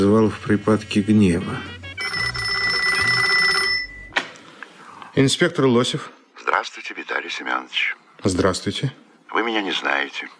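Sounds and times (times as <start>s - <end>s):
speech: 0.0s - 1.8s, 5.2s - 10.3s
telephone bell ringing: 1.8s - 4.2s.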